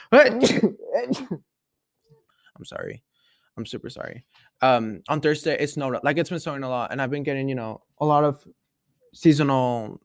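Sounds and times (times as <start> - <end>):
speech: 0.1 - 1.5, 2.6 - 10.0
person sneezing: 0.2 - 1.4.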